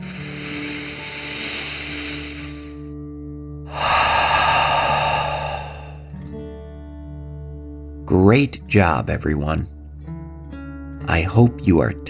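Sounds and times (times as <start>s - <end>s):
deep breath in and out: 0.0s - 2.9s, 3.7s - 6.3s
speech: 8.2s - 9.8s, 11.2s - 12.0s.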